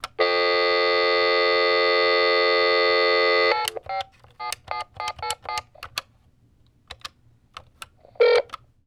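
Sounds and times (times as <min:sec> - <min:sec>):
telephone speakerphone dialing: 0:00.0 - 0:06.1, 0:06.9 - 0:08.7.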